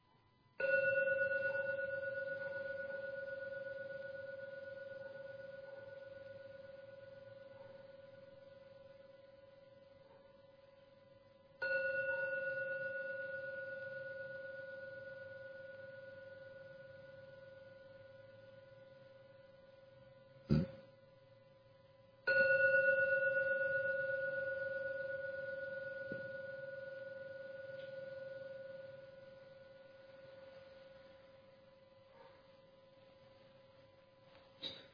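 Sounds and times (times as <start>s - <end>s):
meditation gong ringing: 0.6s - 10.2s, 11.0s - 20.4s, 22.2s - 31.1s.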